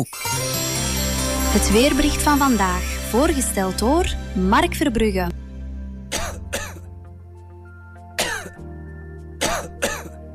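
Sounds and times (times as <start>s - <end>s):
speech: 0.0s - 0.6s, 1.5s - 5.4s
dry hacking cough: 6.1s - 6.9s, 8.2s - 8.6s, 9.4s - 10.2s.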